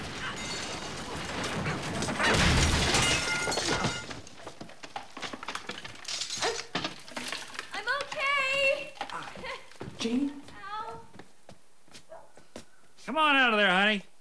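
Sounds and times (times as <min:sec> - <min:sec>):
clatter, knocks and thumps: 0:00.0 - 0:11.3
wooden staircase breaking and collapsing as a person crashes through it: 0:00.0 - 0:11.3.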